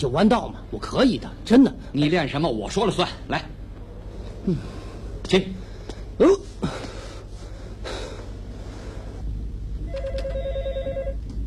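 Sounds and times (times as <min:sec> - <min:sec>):
speech: 0:00.0 - 0:03.6, 0:04.4 - 0:05.6, 0:06.2 - 0:06.8
telephone bell ringing: 0:09.9 - 0:11.2.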